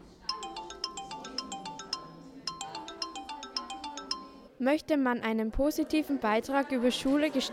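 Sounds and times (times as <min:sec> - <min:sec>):
mobile phone ringing with an electronic melody in a classroom: 0:00.3 - 0:04.5
speech: 0:04.6 - 0:07.5.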